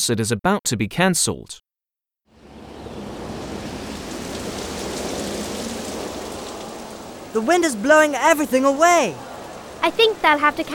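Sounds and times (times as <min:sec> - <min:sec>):
speech: 0:00.0 - 0:01.7, 0:07.3 - 0:10.7
heavy rain pouring down on a concert: 0:02.3 - 0:10.7.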